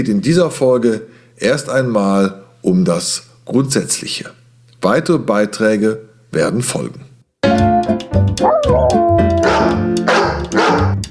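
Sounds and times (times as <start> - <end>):
speech: 0.0 - 7.7, 8.4 - 9.8
dogs barking and yipping at puppy training in a dog school: 8.4 - 11.0.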